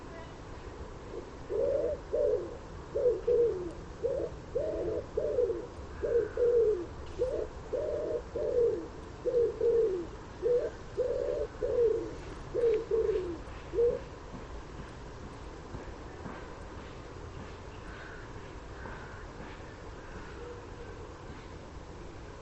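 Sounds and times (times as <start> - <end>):
common wood pigeon cooing: 1.1 - 14.1.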